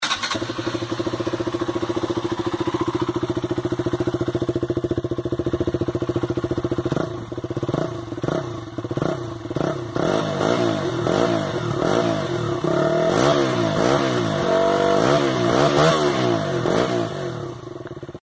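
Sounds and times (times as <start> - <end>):
2025 KTM Duke 200 motorcycle engine of 199.5 cc: 0.0 - 18.2.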